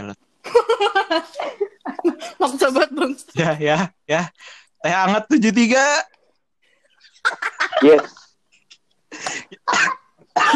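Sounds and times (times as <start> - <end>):
laughter: 0.5 - 2.4, 7.1 - 8.3
speech: 0.8 - 1.5, 2.3 - 6.1, 7.2 - 8.2, 9.2 - 10.5
person coughing harshly: 9.4 - 10.5.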